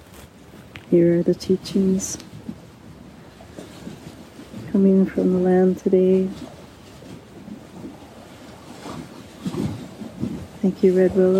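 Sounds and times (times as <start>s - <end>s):
constant wind-like noise: 0.0s - 11.3s
water splashing and lapping: 0.0s - 11.3s
speech: 0.9s - 2.3s, 4.8s - 6.5s, 10.6s - 11.3s.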